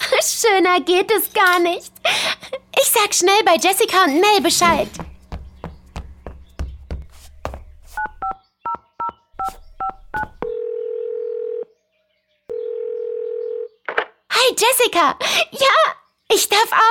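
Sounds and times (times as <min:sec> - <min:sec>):
speech: 0:00.2 - 0:05.1, 0:14.5 - 0:16.8
electronic phone keypad beeps from dialing: 0:08.0 - 0:10.6
telephone dial or ringing tone: 0:09.8 - 0:11.7, 0:12.5 - 0:13.8.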